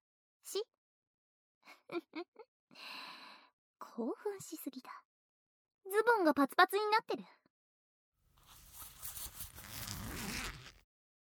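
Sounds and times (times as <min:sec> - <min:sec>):
speech: 0:00.5 - 0:00.8, 0:01.9 - 0:03.0, 0:04.0 - 0:05.1, 0:05.9 - 0:07.4
zipper being pulled down slowly: 0:08.4 - 0:10.8.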